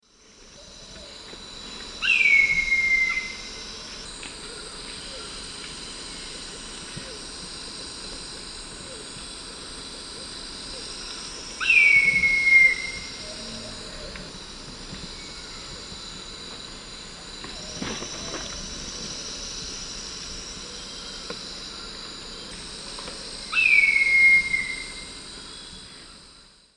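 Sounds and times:
Leucopternis schistaceus calls in South American Eastern Lowlands: 0:02.0 - 0:03.6, 0:11.6 - 0:13.3, 0:23.5 - 0:25.0.

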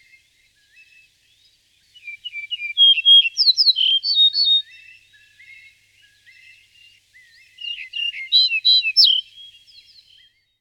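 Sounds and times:
Yellow-breasted bunting, Emberiza aureola, whistled song: 0:02.0 - 0:04.9, 0:07.6 - 0:10.4.

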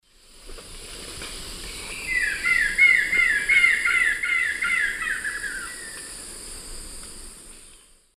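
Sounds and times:
Monasa morphoeus song in the Eastern Lowlands of South America: 0:01.7 - 0:06.2, 0:07.5 - 0:08.1.

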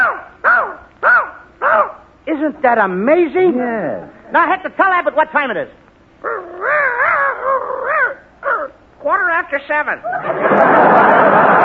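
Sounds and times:
person imitating dog barking with wavering yelps: 0:00.0 - 0:02.1, 0:06.2 - 0:08.8
speech: 0:02.3 - 0:06.4, 0:09.0 - 0:11.6
laughter: 0:10.0 - 0:11.6.

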